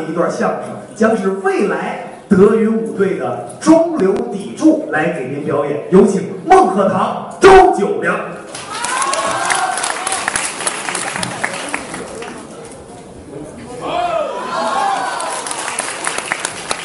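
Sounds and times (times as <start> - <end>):
speech: 0.0 - 8.4
live audience clapping: 8.5 - 12.5, 14.8 - 16.8
live audience cheering with shouts and whoops: 8.6 - 10.4, 13.8 - 15.8.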